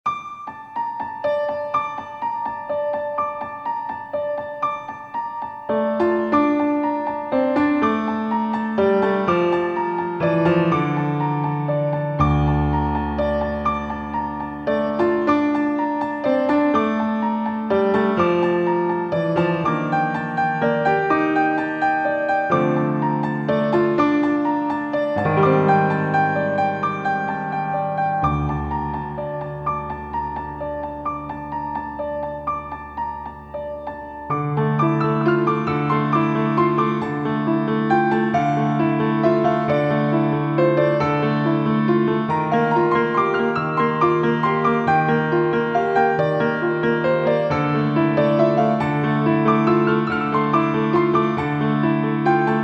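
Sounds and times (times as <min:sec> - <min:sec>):
piano playing a theme variation: 0:00.1 - 0:52.6.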